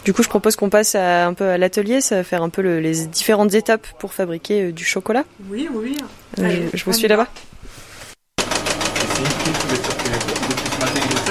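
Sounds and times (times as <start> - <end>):
speech: 0.0 - 7.5
chocolate enrobing machine coating conveyor belt clattering in a workshop: 8.4 - 11.2.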